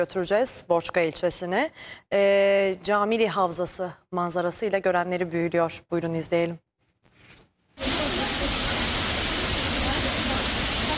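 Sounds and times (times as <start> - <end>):
speech: 0.0 - 6.6
loud waterfall roaring: 7.8 - 10.9.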